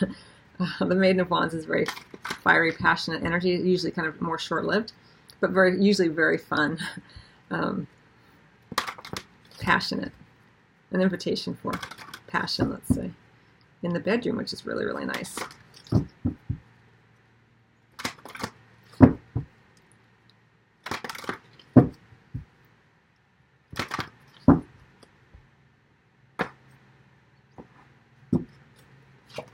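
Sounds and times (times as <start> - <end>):
speech: 0.0 - 8.0, 9.6 - 10.2, 10.9 - 13.2, 13.8 - 16.0
tarot cards being shuffled and handled: 1.8 - 2.5, 8.7 - 9.7, 11.7 - 13.1, 15.1 - 16.6, 18.0 - 19.5, 20.8 - 22.5, 23.7 - 24.7, 28.4 - 29.5.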